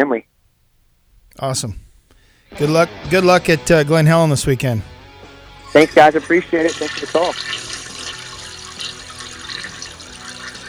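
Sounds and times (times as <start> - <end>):
speech: 0.0 - 0.3, 1.4 - 1.8, 2.5 - 5.0, 5.7 - 7.8
toilet flushing: 5.6 - 10.6.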